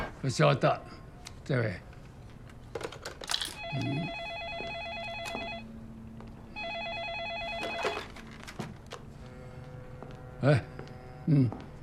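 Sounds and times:
speech: 0.3s - 1.9s, 3.7s - 4.2s, 10.4s - 10.7s, 11.3s - 11.6s
electronic telephone ringtone in trilling bursts: 3.6s - 5.8s, 6.5s - 8.3s.

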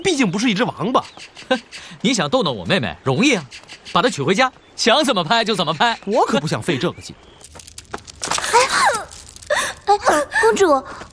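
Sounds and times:
speech: 0.1s - 7.6s, 10.5s - 11.1s
woman crying and wailing with moaning sobs: 8.5s - 10.7s.

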